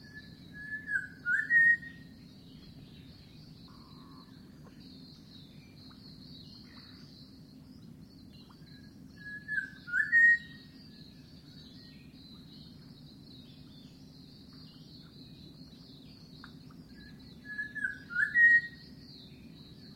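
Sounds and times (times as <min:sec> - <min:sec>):
unidentified bird whistling in mangroves: 0:00.0 - 0:02.1, 0:09.2 - 0:10.7, 0:17.0 - 0:18.9.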